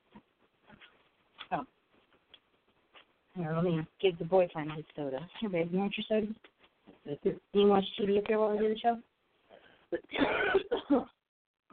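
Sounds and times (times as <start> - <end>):
speech: 1.5 - 1.8, 3.4 - 6.5, 7.1 - 9.1, 9.9 - 11.1
person clearing throat: 9.9 - 11.2
person coughing: 9.9 - 11.2.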